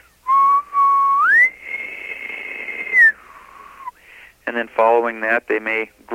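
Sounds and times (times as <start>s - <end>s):
person whistling an imitation of an elk bugle: 0.3s - 4.0s
speech: 4.6s - 6.1s.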